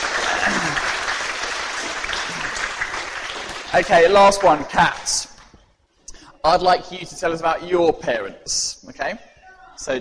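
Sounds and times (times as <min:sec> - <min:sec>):
audience applause: 0:00.0 - 0:04.7
speech: 0:03.7 - 0:05.3, 0:06.4 - 0:09.9.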